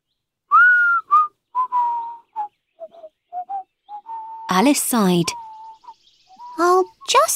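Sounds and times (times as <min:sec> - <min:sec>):
person whistling a tune: 0:00.5 - 0:04.5, 0:05.2 - 0:07.1
speech: 0:04.5 - 0:05.4, 0:06.6 - 0:07.3.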